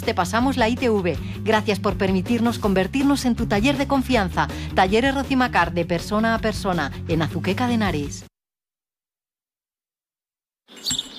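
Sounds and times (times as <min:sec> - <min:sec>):
speech: 0:00.0 - 0:08.3
high thin bird chirps: 0:10.7 - 0:11.1.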